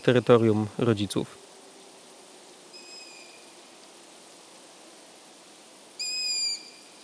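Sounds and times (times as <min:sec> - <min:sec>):
speech: 0:00.0 - 0:01.4
faint hiss: 0:00.0 - 0:07.0
young long-eared owl call: 0:02.7 - 0:03.5, 0:06.0 - 0:07.0.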